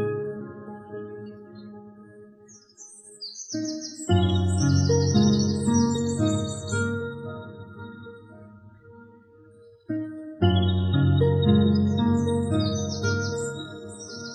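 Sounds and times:
piano playing full low chords: 0.0s - 14.3s
bright quick bird chirps in morning birdsong: 2.4s - 8.2s, 9.6s - 14.3s.

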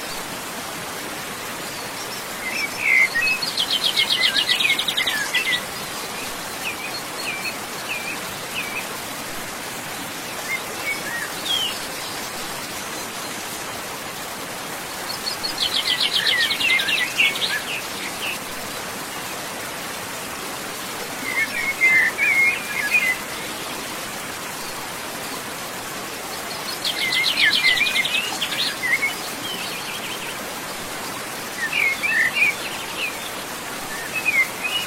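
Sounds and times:
stream flowing under a small bridge in the woods: 0.0s - 34.8s
birds singing in quick chirps and trills: 1.5s - 9.0s, 10.0s - 13.4s, 14.9s - 18.6s, 21.1s - 24.3s, 26.3s - 30.4s, 31.1s - 34.8s.

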